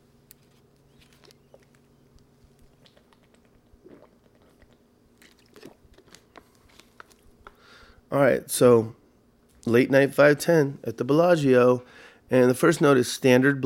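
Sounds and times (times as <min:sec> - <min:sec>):
person sipping water from a glass: 0:02.5 - 0:07.9
gulping swallows: 0:02.7 - 0:05.9
speech: 0:08.1 - 0:09.0, 0:09.7 - 0:13.6.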